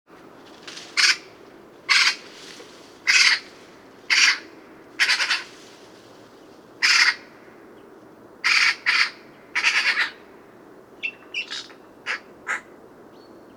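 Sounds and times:
Eurasian magpie harsh chack calls, Pica pica: 1.0s - 1.3s, 1.9s - 2.2s, 3.1s - 3.5s, 4.1s - 5.5s, 6.8s - 7.3s, 8.4s - 10.2s.

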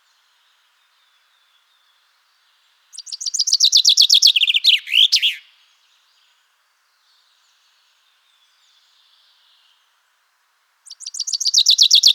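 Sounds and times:
common chaffinch Fringilla coelebs singing: 3.0s - 5.4s, 10.9s - 12.1s.

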